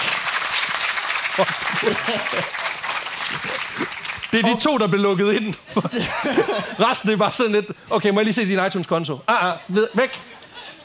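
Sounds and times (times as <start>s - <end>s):
room full of people clapping: 0.0s - 5.0s
laughter: 1.3s - 2.6s, 5.7s - 7.1s, 9.7s - 10.8s
speech: 1.4s - 2.7s, 3.3s - 10.3s.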